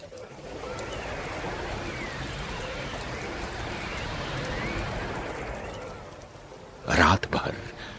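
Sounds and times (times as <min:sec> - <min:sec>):
steady autumn rain mixed with snowfall pouring down: 0:00.0 - 0:07.9
wind gusting and whistling faintly: 0:00.0 - 0:07.9.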